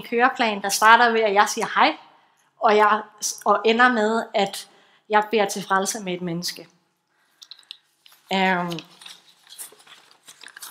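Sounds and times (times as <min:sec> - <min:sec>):
speech: 0:00.0 - 0:06.8, 0:08.3 - 0:09.0
papers shuffling: 0:07.5 - 0:10.6.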